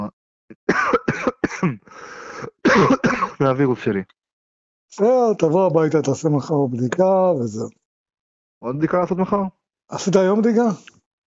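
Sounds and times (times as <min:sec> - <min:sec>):
harsh coughs: 0:00.5 - 0:03.4
speech: 0:01.2 - 0:04.2, 0:04.9 - 0:07.8, 0:08.6 - 0:11.0.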